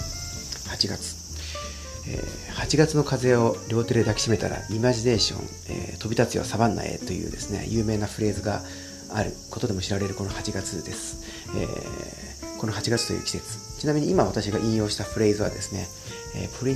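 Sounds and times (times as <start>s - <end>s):
cicadas droning outside the window: 0.0s - 16.7s
speech: 0.7s - 16.7s.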